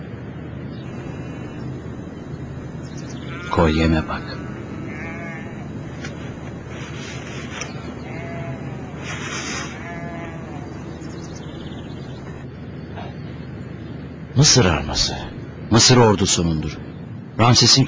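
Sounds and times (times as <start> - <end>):
constant rushing noise: 0.0 - 17.8
flock of sheep bleating: 0.8 - 12.4
speech: 3.5 - 4.5, 14.4 - 16.8, 17.4 - 17.8.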